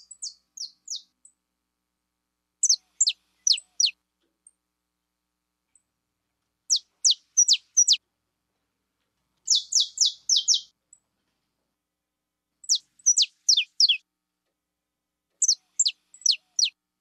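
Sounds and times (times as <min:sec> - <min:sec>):
pure-bred Belgian canary singing: 0:00.0 - 0:01.2, 0:02.6 - 0:04.0, 0:06.7 - 0:08.0, 0:09.5 - 0:10.7, 0:12.6 - 0:14.0, 0:15.4 - 0:16.8.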